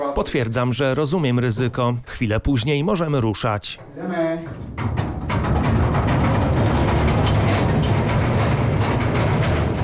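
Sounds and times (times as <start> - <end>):
speech: 0.2 - 5.0
small mine train rattling on rails in a tunnel: 3.7 - 9.8.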